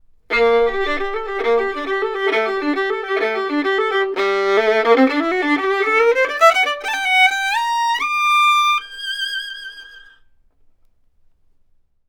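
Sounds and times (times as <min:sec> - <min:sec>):
violin: 0:00.3 - 0:10.3.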